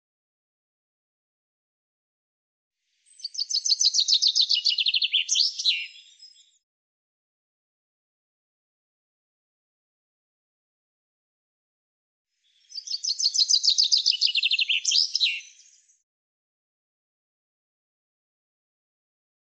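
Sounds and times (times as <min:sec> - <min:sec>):
common chaffinch song: 0:03.0 - 0:06.6, 0:12.4 - 0:16.0.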